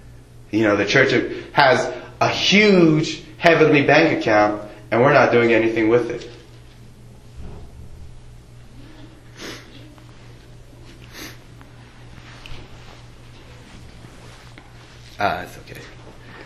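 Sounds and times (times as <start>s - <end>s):
steady low hum: 0.0s - 16.4s
speech: 0.5s - 6.4s, 15.2s - 15.6s
person sniffing through a congested nose from a head cold: 9.3s - 9.9s, 11.0s - 11.5s.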